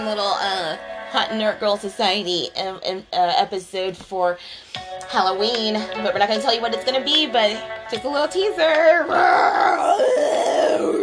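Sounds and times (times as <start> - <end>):
speech: 0.1 - 11.0
person voicing a growling roar imitating a fire-breathing winged creature: 9.0 - 11.0.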